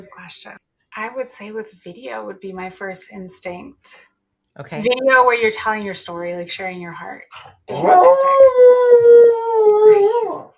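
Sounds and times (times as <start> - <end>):
speech: 0.0 - 10.5
female Berger Picard dog howling: 7.7 - 10.5.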